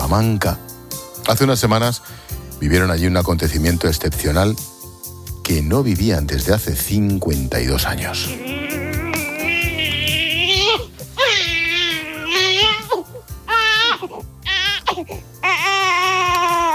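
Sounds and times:
speech: 0:00.1 - 0:00.7, 0:01.3 - 0:04.7, 0:05.5 - 0:08.5
newborn baby crying in the village of Las Casas del Conde in Salamanca Spain: 0:08.2 - 0:16.7.

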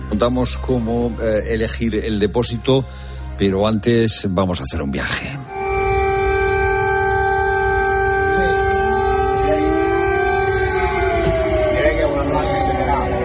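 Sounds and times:
speech: 0:00.1 - 0:05.5
alarm sirens wailing over Odessa Ukraine, a Black Sea port city: 0:03.1 - 0:13.2.

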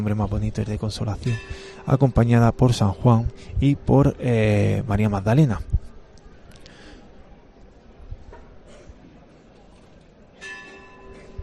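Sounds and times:
speech: 0:00.0 - 0:05.8
murmuring outdoor crowd: 0:00.2 - 0:11.4
bell ringing during procession: 0:01.2 - 0:03.4, 0:10.4 - 0:11.4.

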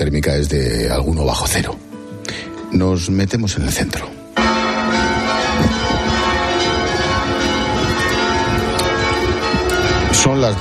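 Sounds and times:
speech: 0:00.0 - 0:01.8, 0:02.7 - 0:04.2, 0:10.2 - 0:10.6
cathedral bells pealing at noon: 0:04.4 - 0:10.6.

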